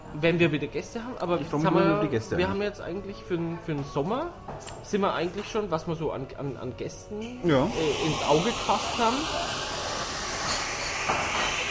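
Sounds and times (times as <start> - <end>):
speech: 0.1 - 9.6
coffee machine running with mechanical whir and hiss: 7.6 - 11.6.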